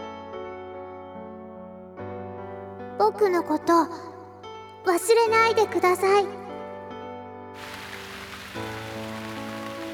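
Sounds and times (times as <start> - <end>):
speech: 3.0 - 4.1, 4.8 - 6.4
heavy rain: 7.6 - 9.9.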